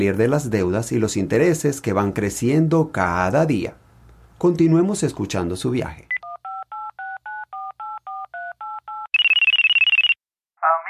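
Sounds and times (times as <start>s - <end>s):
speech: 0.0s - 3.8s, 4.4s - 6.1s
telephone keypad dialing touch-tone beeps: 6.1s - 10.2s
warbling electronic ring of an incoming call: 6.2s - 10.2s.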